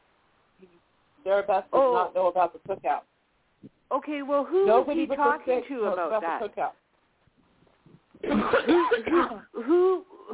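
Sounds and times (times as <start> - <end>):
speech: 0.6 - 6.8, 8.2 - 10.3
person coughing in hacking bursts: 8.2 - 10.3.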